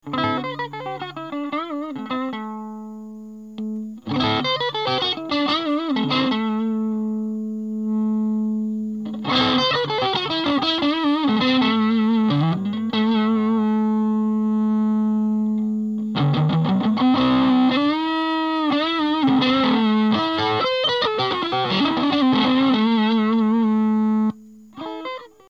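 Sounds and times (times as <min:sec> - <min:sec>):
dirty guitar drive: 0:00.0 - 0:25.4.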